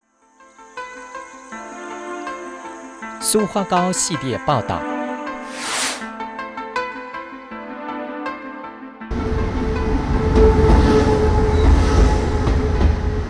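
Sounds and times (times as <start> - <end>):
speech: 3.2 - 4.9
tilting passenger train rolling into railway station: 9.2 - 13.2.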